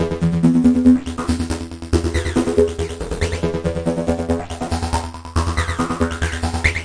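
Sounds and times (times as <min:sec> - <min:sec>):
buzzy bee synth sequence: 0:00.1 - 0:06.8.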